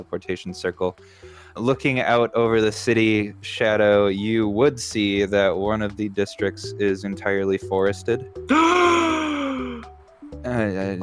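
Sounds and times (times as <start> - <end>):
speech: 0.0 - 9.2, 10.6 - 11.0
person gasping loudly with falling pitch: 8.5 - 9.9
person making a rising vocal exclamation: 8.5 - 9.9.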